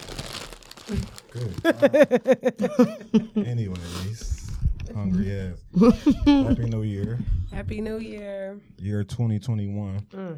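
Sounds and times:
crunching and crinkling of potato chips being chewed: 0.0s - 2.0s
speech: 0.9s - 4.2s, 4.9s - 10.3s
person's voice: 0.9s - 10.3s
laughter: 1.3s - 7.4s.

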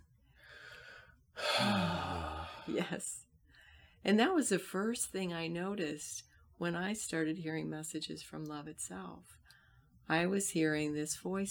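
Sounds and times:
deep breaths: 0.3s - 2.8s
speech: 2.7s - 3.3s, 4.0s - 9.4s, 10.1s - 11.4s.

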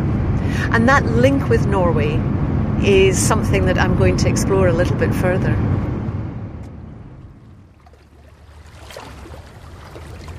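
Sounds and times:
low harbour rumble: 0.0s - 10.3s
speech: 0.6s - 5.9s
small splashes and knocks of boats shifting on the water: 7.2s - 10.3s
water lapping in a harbour: 7.2s - 10.3s.

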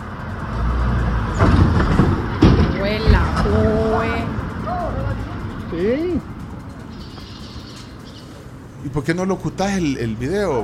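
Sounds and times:
road traffic rumble: 0.0s - 10.6s
cars thumping over a speed bump: 1.1s - 3.9s
speech: 5.7s - 6.3s, 8.9s - 10.6s.

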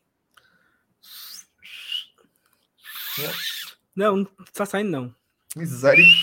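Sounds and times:
person imitating a referee's whistle by mouth: 1.0s - 2.2s, 2.8s - 3.7s, 5.9s - 6.2s
speech: 3.2s - 6.2s.

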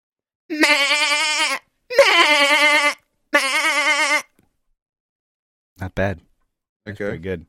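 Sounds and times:
person imitating goat bleats: 0.5s - 4.3s
speech: 5.8s - 7.4s.

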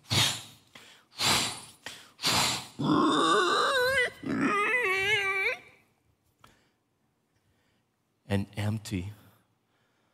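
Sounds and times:
pigs squealing: 2.4s - 5.6s
speech: 2.8s - 3.1s, 8.4s - 9.2s.

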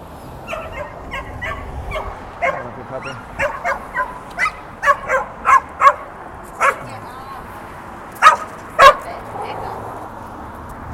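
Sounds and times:
big dogs barking aggressively: 0.4s - 7.0s, 8.2s - 10.0s.

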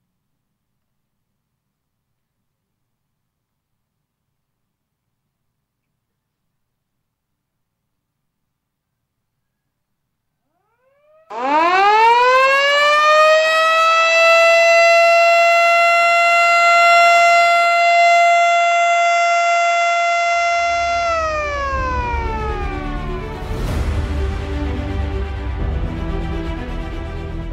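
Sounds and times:
loud ceremonial siren wailing at a toll road opening: 10.5s - 26.9s.

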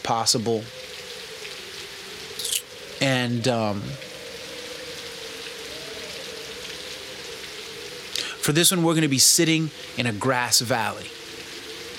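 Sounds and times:
speech: 0.0s - 1.0s, 3.0s - 4.1s, 8.5s - 11.2s
steady light rain patter: 0.0s - 11.9s.

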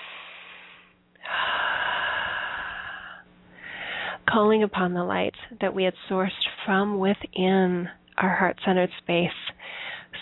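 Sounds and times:
deep breath: 0.0s - 4.2s, 9.6s - 10.1s
speech: 4.4s - 9.4s.

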